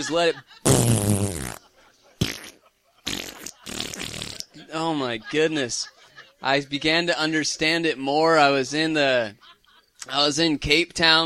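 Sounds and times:
laughter: 0:00.0 - 0:00.7, 0:01.4 - 0:06.8, 0:09.2 - 0:10.0
speech: 0:00.0 - 0:01.6, 0:04.6 - 0:11.2
people blowing raspberries imitating farts: 0:00.6 - 0:01.6, 0:02.2 - 0:04.5.

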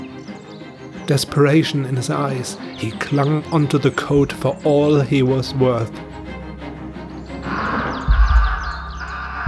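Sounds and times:
harsh rapid bird calls: 0:00.0 - 0:09.4
speech: 0:01.1 - 0:06.1
heavy low thumps: 0:07.3 - 0:09.4
crow screeching while attacking: 0:07.4 - 0:09.4
noisy windy background: 0:07.4 - 0:09.4.

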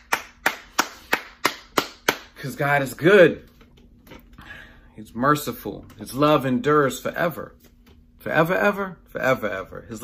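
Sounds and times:
sharp hand claps: 0:00.0 - 0:02.5
speech: 0:02.4 - 0:03.5, 0:05.0 - 0:07.6, 0:08.2 - 0:10.0.

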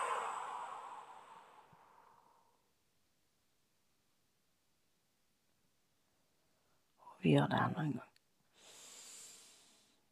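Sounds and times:
slow deep exhale during breathing exercise: 0:00.0 - 0:02.6, 0:08.5 - 0:10.0
speech: 0:07.2 - 0:08.1.

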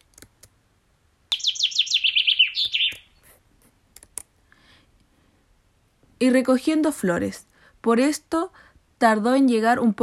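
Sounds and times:
bird in a forest singing descending chirps: 0:01.3 - 0:03.4
speech: 0:06.2 - 0:10.0.

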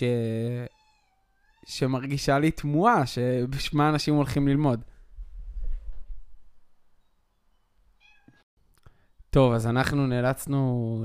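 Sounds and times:
speech: 0:00.0 - 0:00.8, 0:01.6 - 0:04.9, 0:09.3 - 0:11.0
hungry cat meowing outside the door: 0:00.7 - 0:01.7, 0:08.0 - 0:08.4.

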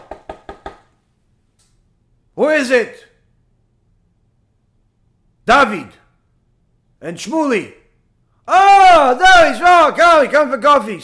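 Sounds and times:
firm knocking on the door of a house: 0:00.0 - 0:00.9
speech: 0:02.4 - 0:03.1, 0:05.5 - 0:06.0, 0:07.0 - 0:07.8, 0:08.5 - 0:11.0.

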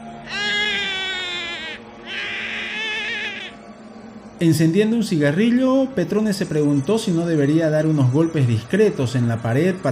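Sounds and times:
small child whimpering and crying in high wavering wails: 0:00.2 - 0:03.6
speech: 0:04.4 - 0:09.9.

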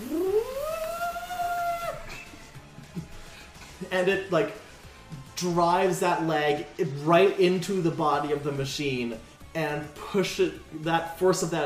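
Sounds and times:
voice imitating a loud roar: 0:00.0 - 0:02.1
speech: 0:03.9 - 0:04.6, 0:05.4 - 0:11.6.

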